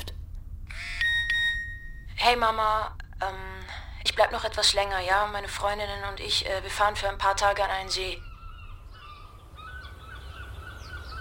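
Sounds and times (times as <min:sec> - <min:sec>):
speech: 0:02.2 - 0:08.3
seagulls calling: 0:07.8 - 0:11.1.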